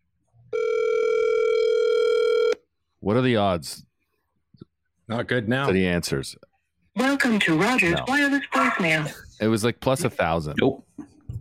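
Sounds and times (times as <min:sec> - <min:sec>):
ringback tone of an outgoing telephone call: 0:00.5 - 0:02.6
speech: 0:03.0 - 0:03.9, 0:05.1 - 0:11.0.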